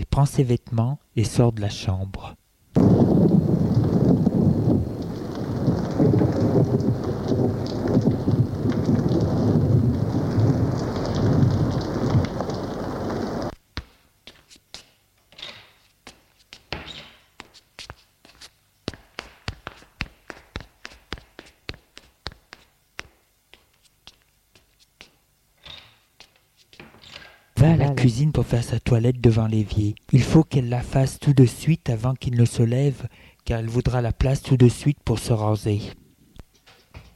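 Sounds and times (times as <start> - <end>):
speech: 0.2 - 3.1, 28.2 - 36.0
low thunder rumble: 2.8 - 13.5
heavy rain in a thunderstorm: 2.8 - 13.6, 27.6 - 28.6.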